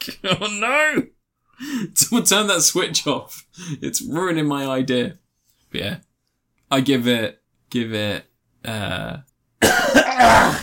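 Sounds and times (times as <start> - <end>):
speech: 0.0 - 6.1, 6.7 - 10.6
person coughing without covering the mouth: 9.6 - 10.6.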